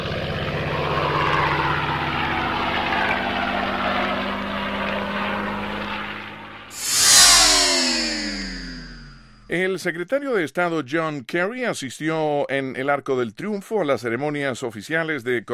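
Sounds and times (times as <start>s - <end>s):
World War II propeller aircraft droning over the city: 0.0s - 9.5s
louder World War II propeller plane sweeping past: 1.0s - 9.5s
speech: 9.5s - 15.5s.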